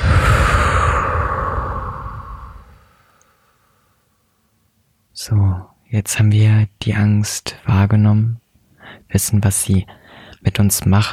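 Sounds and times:
deep breath during a guided relaxation exercise: 0.0 - 4.0, 8.7 - 9.1, 9.9 - 10.4
speech: 5.2 - 8.4, 9.1 - 11.1.

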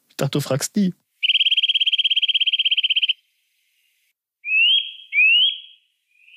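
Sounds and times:
speech: 0.2 - 1.0
songbird giving a fast buzzy trill: 1.2 - 3.2, 4.4 - 6.3
two rising whistled songbird notes: 1.2 - 3.2, 4.4 - 6.3.

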